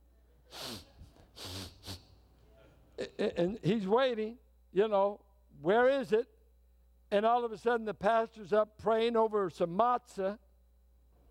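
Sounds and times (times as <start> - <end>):
voice imitating a man sniffing the air for food: 0.5 - 2.2
speech: 3.0 - 6.4, 7.1 - 10.4.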